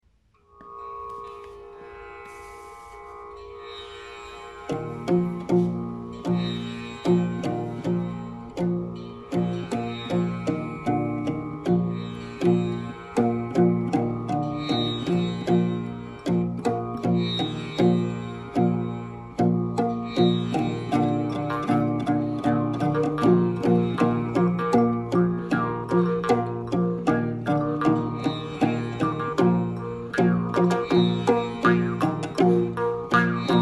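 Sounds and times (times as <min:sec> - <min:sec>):
tambura: 0:00.0 - 0:33.6
maultrommel jaw harp: 0:20.5 - 0:33.6.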